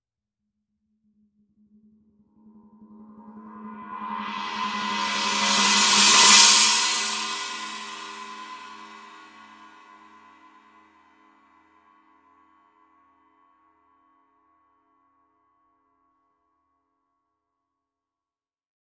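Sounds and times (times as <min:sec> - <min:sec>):
18 inch china cymbal roll: 0:03.8 - 0:09.6.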